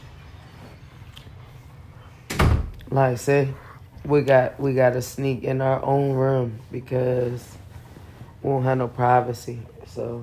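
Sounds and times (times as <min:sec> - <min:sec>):
door shutting with a heavy thud: 0:02.3 - 0:02.8
speech: 0:02.9 - 0:07.6, 0:08.4 - 0:10.2.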